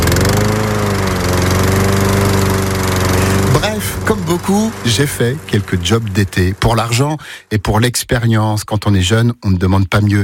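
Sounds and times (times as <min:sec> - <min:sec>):
ride-on lawn mower engine running: 0:00.0 - 0:07.6
speech: 0:04.3 - 0:10.2.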